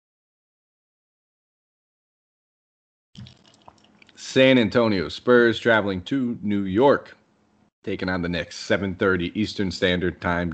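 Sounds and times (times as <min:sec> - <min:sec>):
person drinking water, gulping: 0:03.2 - 0:04.2
light hiss: 0:03.2 - 0:10.5
speech: 0:04.2 - 0:07.2, 0:07.8 - 0:10.5.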